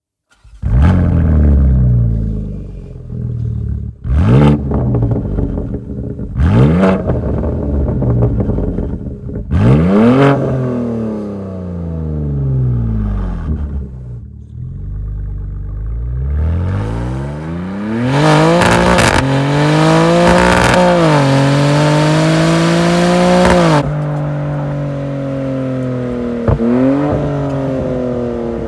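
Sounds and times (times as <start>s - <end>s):
BMW M4 exhaust with long Evolution link pipe, OPF delete: 0.3s - 28.6s.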